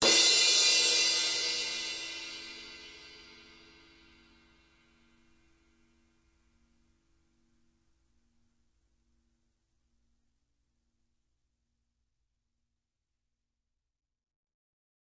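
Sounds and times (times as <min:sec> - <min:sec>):
crash cymbal of a live drum kit: 0:00.0 - 0:05.2.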